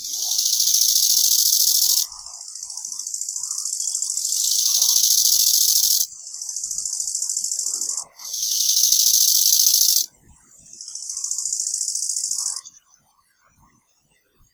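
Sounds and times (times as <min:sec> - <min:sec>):
bow-winged grasshoppers Chorthippus biguttulus alternating song: 0:00.0 - 0:02.1, 0:04.1 - 0:06.1, 0:08.2 - 0:10.1.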